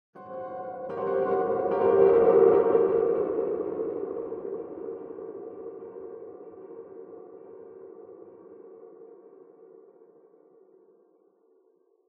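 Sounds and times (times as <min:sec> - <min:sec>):
piano: 0:00.2 - 0:08.3.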